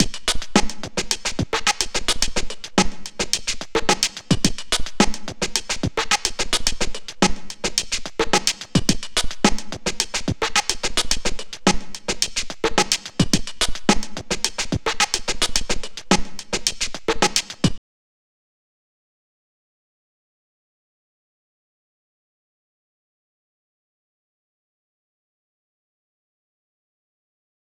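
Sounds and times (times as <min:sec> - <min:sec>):
club dance drums: 0:00.0 - 0:17.8.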